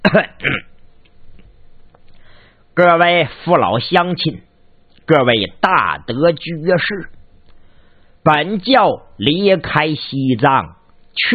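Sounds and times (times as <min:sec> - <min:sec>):
throat clearing: 0:00.0 - 0:00.8
speech: 0:00.1 - 0:00.6, 0:02.8 - 0:04.5, 0:05.1 - 0:07.2, 0:08.2 - 0:11.3.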